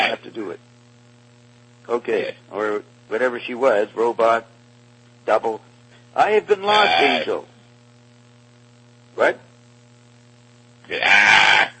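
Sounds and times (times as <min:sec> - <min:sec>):
speech: 0:00.1 - 0:00.7, 0:01.9 - 0:04.5, 0:05.3 - 0:07.5, 0:09.2 - 0:09.5, 0:10.9 - 0:11.5
loud strained harsh human scream: 0:10.9 - 0:11.7.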